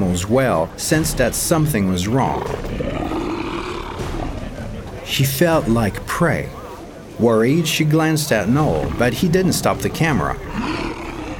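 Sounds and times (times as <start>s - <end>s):
speech: 0.2s - 2.9s, 5.1s - 6.6s, 7.2s - 10.9s
lion roaring: 2.1s - 4.8s, 8.4s - 11.3s.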